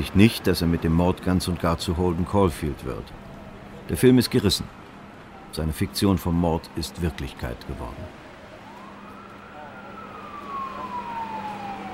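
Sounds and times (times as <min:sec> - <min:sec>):
speech: 0:00.0 - 0:03.3, 0:03.9 - 0:04.8, 0:05.5 - 0:08.2
police car siren wailing: 0:06.2 - 0:11.9.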